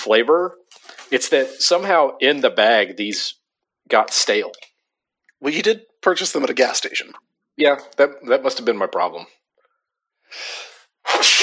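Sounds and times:
speech: 0.0s - 4.7s, 5.4s - 9.4s, 10.3s - 11.4s
sharp breathy intake: 10.2s - 10.9s
sneeze triggered by pepper spice: 10.8s - 11.4s.

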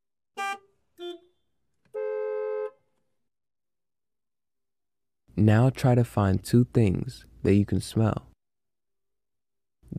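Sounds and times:
car horns honking: 0.4s - 2.9s
speech: 5.4s - 8.3s.

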